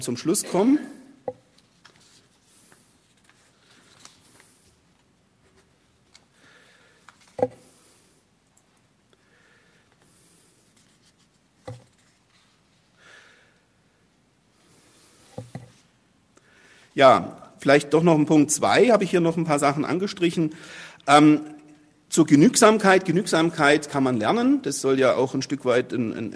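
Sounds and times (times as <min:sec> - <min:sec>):
speech: 0:00.0 - 0:01.0, 0:17.0 - 0:26.3
paper pages leafed through: 0:01.6 - 0:06.2.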